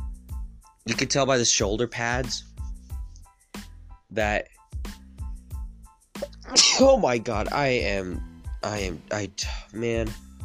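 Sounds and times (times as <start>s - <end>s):
speech: 0.8s - 2.5s, 4.1s - 4.8s, 6.8s - 10.2s
person sneezing: 6.2s - 6.9s.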